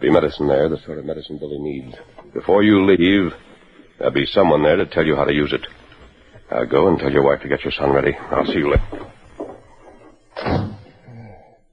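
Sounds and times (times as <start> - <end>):
speech: 0.0 - 5.8, 6.5 - 9.0
door shutting with a heavy thud: 10.3 - 11.0.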